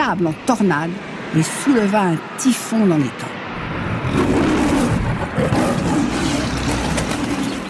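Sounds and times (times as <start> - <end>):
speech: 0.1 - 3.4, 4.1 - 4.5
lion roaring: 4.0 - 7.6.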